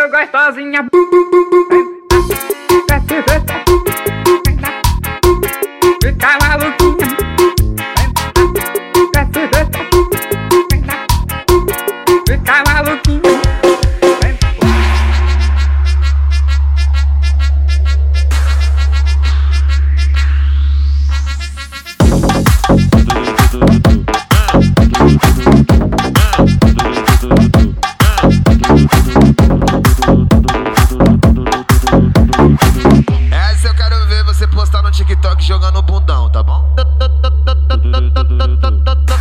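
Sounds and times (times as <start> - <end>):
speech: 0.2 - 2.4
car sound system blasting loud punchy music with hard rhythmic beats: 1.0 - 36.9, 38.4 - 39.1
deep sustained bass drone with sweeping tones from a car sound system: 14.6 - 27.7, 28.4 - 39.1.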